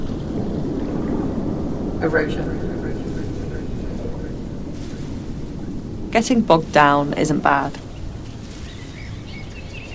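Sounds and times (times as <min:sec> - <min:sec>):
faint birds twittering and warbling in a marsh: 0:00.0 - 0:09.9
steady low outdoor rumble: 0:00.0 - 0:09.9
speech: 0:02.0 - 0:02.8, 0:06.1 - 0:07.8
brief high bird chirps: 0:07.8 - 0:09.9.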